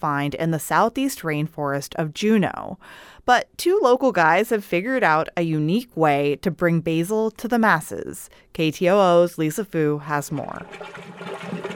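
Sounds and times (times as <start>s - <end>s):
speech: 0.0s - 11.7s
compost tea brewing in oxygenated water, bubbling and gurgling: 10.3s - 11.7s.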